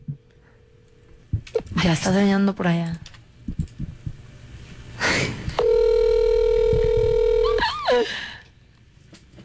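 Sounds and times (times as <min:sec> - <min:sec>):
speech: 0:01.8 - 0:03.1
phone ringback tone: 0:05.6 - 0:07.7.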